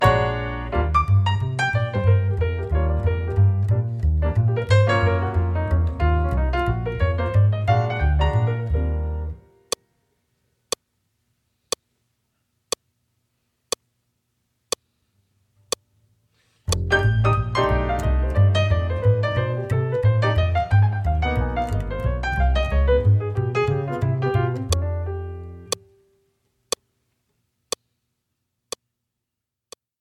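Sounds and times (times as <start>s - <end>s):
piano: 0.0s - 9.6s, 16.7s - 25.8s
bass: 0.0s - 9.8s, 16.6s - 25.9s
click: 2.3s - 7.8s, 16.7s - 24.9s.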